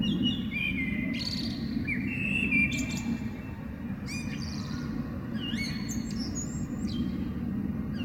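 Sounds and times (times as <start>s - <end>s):
Eurasian blackbird song with fluty whistled phrases: 0.0s - 8.0s
low background rumble: 0.0s - 8.0s.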